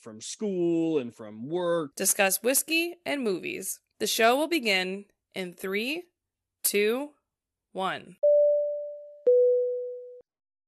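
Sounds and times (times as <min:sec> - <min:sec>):
speech: 0:00.0 - 0:08.2
telephone line tone during a call: 0:08.2 - 0:10.2.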